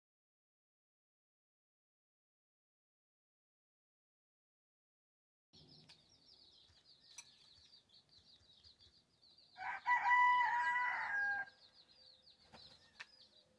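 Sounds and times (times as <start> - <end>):
rooster crowing: 9.6 - 11.6.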